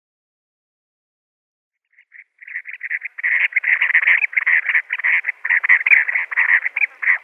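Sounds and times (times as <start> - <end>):
Chestnut-bellied sandgrouse flock chattering: 2.0 - 7.2.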